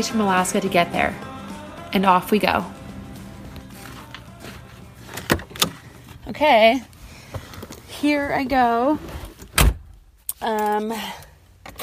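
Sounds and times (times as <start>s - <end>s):
speech: 0.0s - 1.3s, 1.9s - 2.8s, 6.3s - 6.9s, 8.0s - 9.1s, 10.4s - 11.2s
car engine starting up and rumbling: 0.0s - 7.8s
car door closing: 5.0s - 6.2s, 9.4s - 10.0s.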